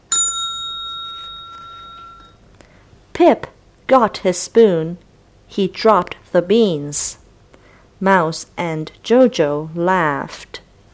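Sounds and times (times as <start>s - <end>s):
telephone bell ringing: 0.1s - 2.4s
speech: 3.2s - 7.2s, 8.0s - 10.6s.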